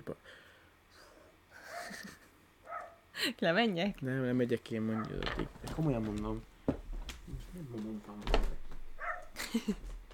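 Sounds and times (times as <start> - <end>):
laughter: 1.6 - 2.4, 9.4 - 9.9
dog barking outside: 2.6 - 3.1, 4.9 - 5.2, 9.0 - 9.4
speech: 3.2 - 6.5, 7.6 - 8.5, 9.5 - 10.0.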